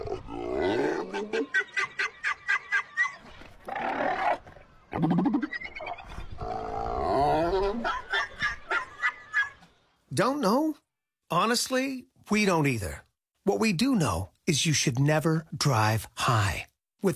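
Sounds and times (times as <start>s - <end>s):
seals barking and grunting: 0.0s - 1.8s, 3.0s - 7.9s
laughter: 1.1s - 3.6s, 7.4s - 9.8s
speech: 1.2s - 1.7s, 10.2s - 17.1s.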